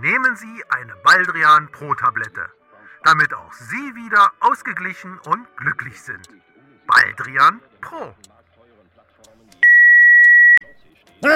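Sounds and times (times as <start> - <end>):
speech: 0.0 - 8.3
faint talk: 2.1 - 3.8, 5.2 - 9.7, 10.6 - 11.3
loud steady electronic phone beep: 9.6 - 10.7.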